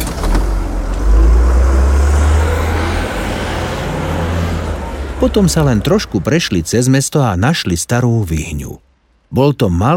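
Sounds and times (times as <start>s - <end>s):
bus engine rumbling as it pulls away: 0.0s - 9.9s
broad hiss of road noise: 1.0s - 9.9s
speech: 5.2s - 9.9s.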